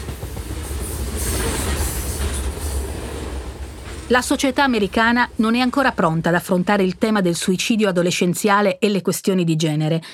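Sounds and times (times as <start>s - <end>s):
train wheels rumbling on railway tracks: 0.0s - 7.6s
speech: 4.1s - 10.1s.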